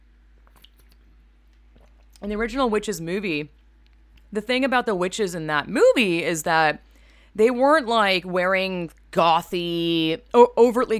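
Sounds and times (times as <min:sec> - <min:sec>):
low steady hum: 0:00.0 - 0:10.9
person sipping and swallowing water: 0:00.4 - 0:02.3
speech: 0:02.2 - 0:03.6, 0:04.3 - 0:10.9.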